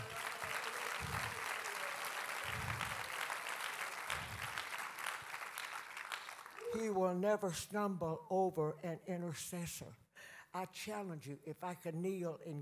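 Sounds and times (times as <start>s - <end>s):
audience clapping hands: 0.0s - 7.0s
speech: 6.8s - 12.6s.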